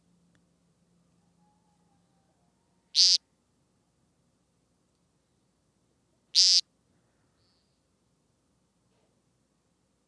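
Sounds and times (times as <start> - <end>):
American woodcock giving buzzy nasal peent calls: 3.0 - 3.2, 6.4 - 6.6.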